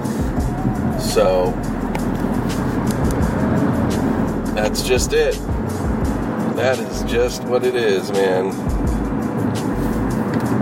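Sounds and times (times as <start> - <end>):
car engine and road rumble from inside a moving car: 0.0 - 10.6
speech: 1.1 - 1.8, 4.6 - 5.6, 6.6 - 8.8.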